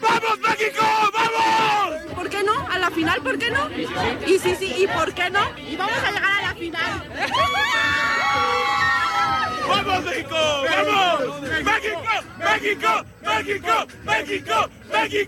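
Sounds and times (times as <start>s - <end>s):
football fans yelling excitedly: 0.0s - 2.0s, 7.2s - 15.2s
large crowd of football fans cheering: 0.0s - 2.0s, 3.8s - 15.2s
football fans chanting: 0.0s - 15.2s
speech: 3.1s - 8.6s, 9.7s - 15.2s.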